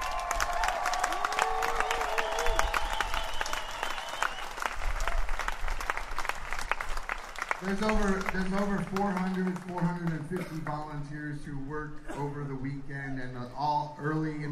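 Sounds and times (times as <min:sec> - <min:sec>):
faint cheers from the crowd: 0:00.0 - 0:05.4
large crowd applause: 0:00.0 - 0:10.8
whistles from the crowd: 0:01.9 - 0:04.7
speech: 0:07.6 - 0:14.4.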